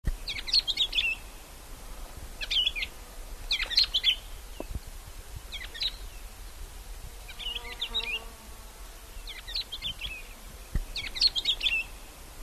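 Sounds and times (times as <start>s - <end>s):
soft steady background hiss: 0.0s - 12.4s
bird chirping: 0.1s - 1.4s, 2.4s - 2.9s, 3.5s - 4.8s, 7.3s - 8.4s, 9.2s - 12.0s.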